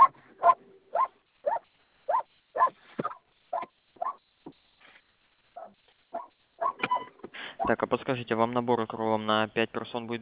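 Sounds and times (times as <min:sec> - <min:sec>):
small dog barking: 0:00.0 - 0:04.2, 0:05.6 - 0:06.9
speech: 0:07.7 - 0:10.2.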